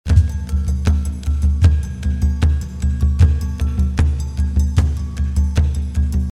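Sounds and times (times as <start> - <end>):
live drum solo: 0.1 - 5.9.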